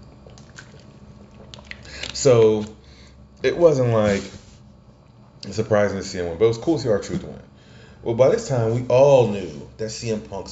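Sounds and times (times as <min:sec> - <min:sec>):
person swigging water with wet gulping and swallowing: 0:00.0 - 0:02.2
speech: 0:02.2 - 0:02.8, 0:03.4 - 0:04.4, 0:05.4 - 0:10.4.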